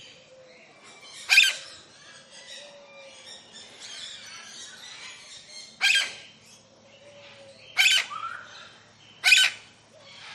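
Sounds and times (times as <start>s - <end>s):
doves calling in a tropical aviary: 0.0s - 10.3s
soft bird chatter: 0.0s - 10.3s
Captive lilac-crowned amazon parrot squawking in a large tropical aviary: 1.3s - 1.6s, 5.8s - 6.2s, 7.8s - 8.2s, 9.2s - 9.6s.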